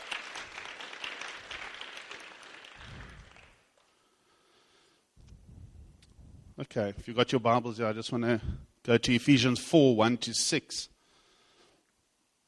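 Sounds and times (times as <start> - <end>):
crowd applauding: 0.0 - 3.9
speech: 6.6 - 10.9.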